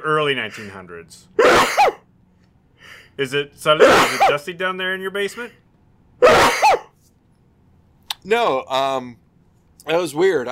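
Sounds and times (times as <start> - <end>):
speech: 0.0 - 2.0, 2.9 - 5.6, 8.2 - 9.2, 9.8 - 10.5
single loud sneeze set off by a light: 1.4 - 2.0, 3.8 - 4.4, 6.2 - 7.0.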